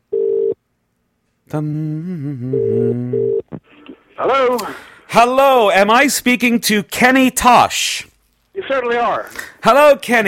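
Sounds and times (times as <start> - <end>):
telephone ringing tone on a call: 0.1 - 0.6, 2.5 - 3.4
speech: 1.5 - 8.1, 8.7 - 10.2.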